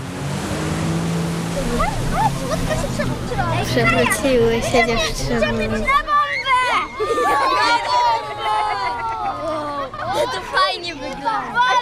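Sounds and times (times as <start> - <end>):
motorboat engine droning during a water rescue exercise: 0.0 - 10.2
rushing water: 0.0 - 11.7
wind: 0.0 - 11.7
laughter: 1.6 - 5.6, 6.5 - 11.7
speech: 1.7 - 6.1.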